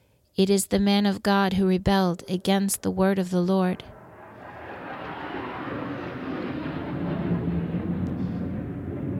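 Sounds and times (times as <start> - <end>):
speech: 0.4 - 3.9
low-flying jet aircraft passing overhead: 3.8 - 9.1.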